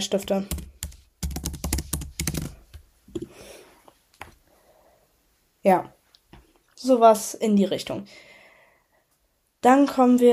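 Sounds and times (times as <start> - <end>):
speech: 0.0 - 0.6, 5.6 - 6.0, 6.8 - 8.3, 9.6 - 10.3
computer keyboard typing as notes are written: 0.1 - 2.7.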